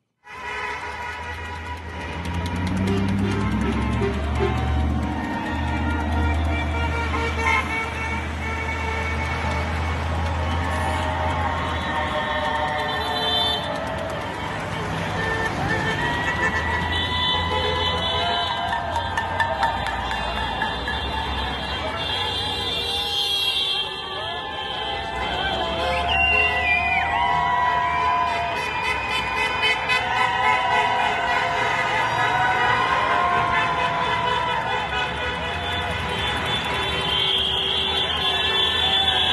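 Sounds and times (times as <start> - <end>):
truck air horns blaring during truckers' protest in Canada: 0.2 - 39.3
deep truck engine rumble: 1.7 - 18.9.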